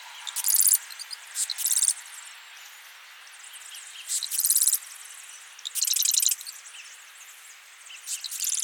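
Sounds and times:
Marsh wren Cistothorus palustris dry mechanical rattling trills: 0.1 - 2.3, 3.3 - 8.6
Marsh wren soft ticking notes: 0.2 - 2.2, 3.5 - 7.1, 7.9 - 8.6.

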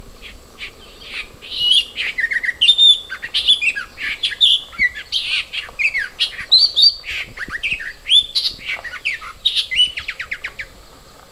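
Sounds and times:
nightingale reed warbler Acrocephalus luscinius singing on Saipan: 0.0 - 10.9.

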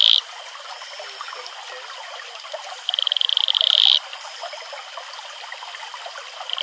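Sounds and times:
Atelopus franciscus male advertisement call: 0.0 - 2.2, 2.8 - 4.7, 6.4 - 6.6.

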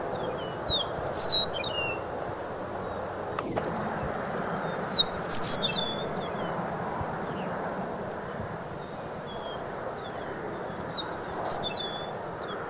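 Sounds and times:
Eastern meadowlark slurred whistled song: 0.1 - 2.0, 2.8 - 7.5, 8.1 - 12.6
steady low rumble: 3.4 - 6.4.

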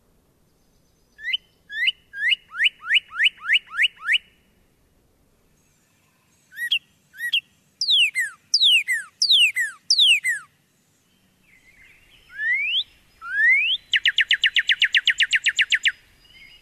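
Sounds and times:
northern cardinal song of downslurred whistles: 1.2 - 4.4, 6.5 - 10.5, 11.6 - 16.6.

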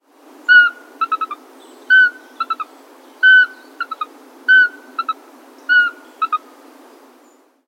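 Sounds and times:
Eurasian pygmy owl whistled calls: 0.5 - 6.4.

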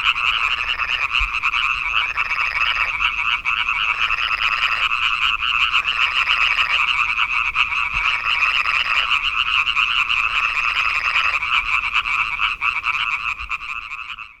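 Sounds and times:
European tree frog chorus, Hyla arborea: 0.0 - 14.3.

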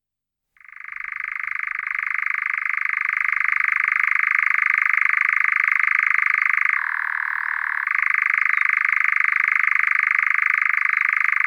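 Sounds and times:
European nightjar Caprimulgus europaeus churring: 0.6 - 11.4.

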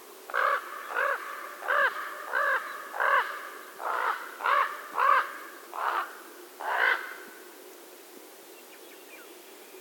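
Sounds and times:
Common raven croaking hoarse throaty caws: 0.3 - 7.2.

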